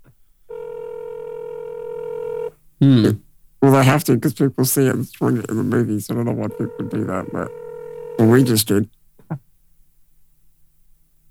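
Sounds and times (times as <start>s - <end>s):
telephone line ringing tone: 0.5s - 2.5s, 6.3s - 8.6s
speech: 2.8s - 7.6s, 8.2s - 9.5s.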